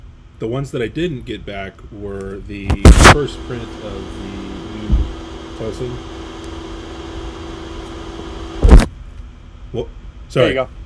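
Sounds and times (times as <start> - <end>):
low steady hum: 0.0 - 10.8
speech: 0.4 - 4.4, 5.6 - 6.2, 9.7 - 10.8
motorized whir: 2.7 - 8.9.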